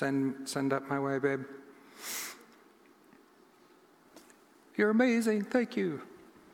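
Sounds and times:
speech: 0.0s - 2.3s, 4.8s - 6.1s
nose sniffing: 1.9s - 2.5s.

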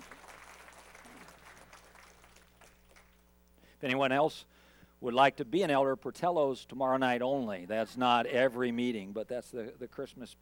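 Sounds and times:
audience applauding: 0.0s - 3.3s
speech: 3.8s - 10.4s.

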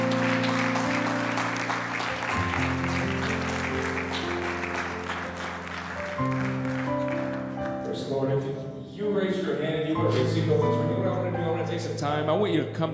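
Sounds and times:
worship service audience clapping in praise: 0.0s - 8.0s
sustained organ chords: 0.0s - 12.9s
speech: 12.1s - 12.9s.

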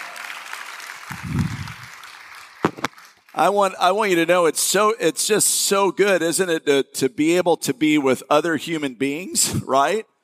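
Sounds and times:
church worship congregation applause: 0.0s - 3.8s
speech: 3.4s - 10.1s.

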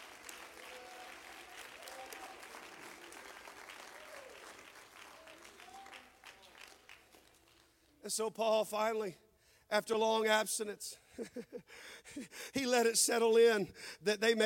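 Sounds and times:
congregation clapping hands: 0.0s - 8.0s
speech: 8.0s - 14.4s.

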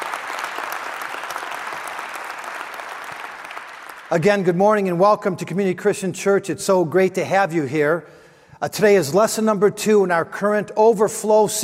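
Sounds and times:
audience applauding: 0.0s - 4.6s
speech: 4.1s - 11.6s.

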